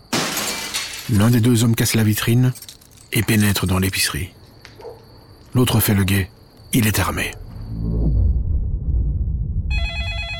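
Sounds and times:
speech: 0:01.1 - 0:04.4, 0:05.5 - 0:07.4
low rumbling background: 0:07.1 - 0:09.8
telephone ringing at a police line: 0:09.7 - 0:10.3.

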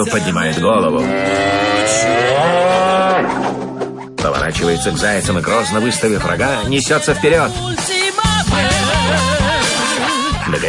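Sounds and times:
speech: 0:00.0 - 0:09.4
cartoon cow mooing: 0:01.0 - 0:03.7.

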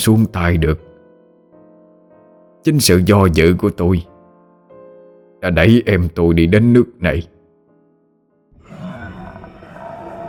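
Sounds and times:
speech: 0:00.0 - 0:00.9, 0:02.6 - 0:04.1, 0:05.4 - 0:07.3
eerie growling roar from inside a cave: 0:08.6 - 0:10.2.

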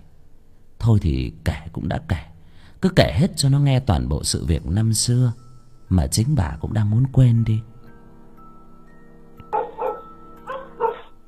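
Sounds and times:
faint steady hum: 0:00.0 - 0:11.2
speech: 0:00.8 - 0:07.7
dogs barking loudly in a village: 0:09.5 - 0:11.2.

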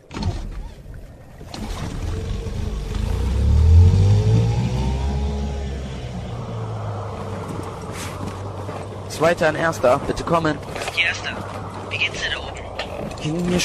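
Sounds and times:
car engine accelerating: 0:01.6 - 0:07.6
speech: 0:09.2 - 0:12.4, 0:13.2 - 0:13.6.

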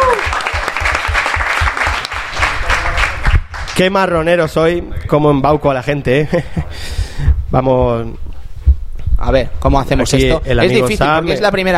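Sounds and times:
audience applause: 0:00.0 - 0:03.8
low thumps: 0:00.0 - 0:05.0, 0:06.6 - 0:10.5
speech: 0:03.8 - 0:06.6, 0:07.5 - 0:08.3, 0:09.2 - 0:11.7.

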